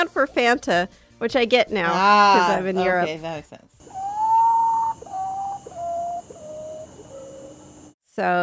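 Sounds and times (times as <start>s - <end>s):
speech: 0.0s - 4.0s, 8.2s - 8.4s
Common Potoo mournful whistled song: 3.8s - 7.9s
faint steady high hum: 3.8s - 7.9s.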